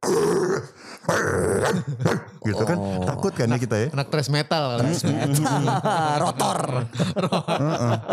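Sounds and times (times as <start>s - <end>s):
person imitating a dog with guttural growls and bark-like bursts: 0.0s - 3.2s
speech: 0.1s - 8.1s
laughter: 4.8s - 8.1s.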